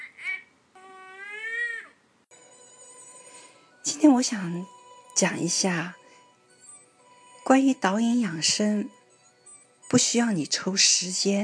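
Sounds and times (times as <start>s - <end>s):
baby crying in tonal wails at home: 0.0s - 2.0s
speech: 3.9s - 6.0s, 7.5s - 9.0s, 9.9s - 11.4s.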